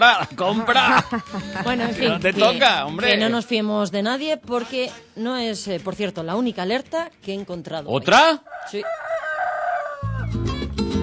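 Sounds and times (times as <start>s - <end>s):
laughter: 0.0s - 2.6s
speech: 0.0s - 9.2s
rooster crowing: 8.4s - 10.6s.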